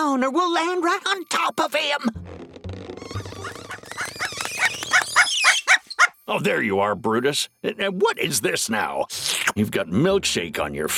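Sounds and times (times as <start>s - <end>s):
speech: 0.2s - 3.5s, 6.3s - 10.9s
guard dog yelping and squealing excitedly: 3.1s - 6.2s.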